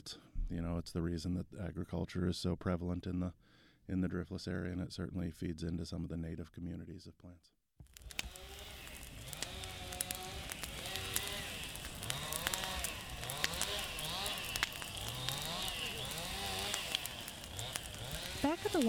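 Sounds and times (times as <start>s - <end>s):
speech: 0.0s - 7.6s, 18.5s - 18.8s
branches snapping and crackling: 7.8s - 18.8s
chainsaws cutting through brush: 7.9s - 18.8s.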